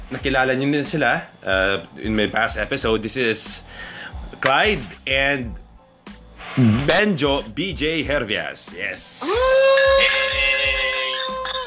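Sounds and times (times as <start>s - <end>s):
speech: 0.1s - 5.6s, 6.6s - 11.4s
drinking glasses clinking with a bell-like ring: 9.7s - 11.6s.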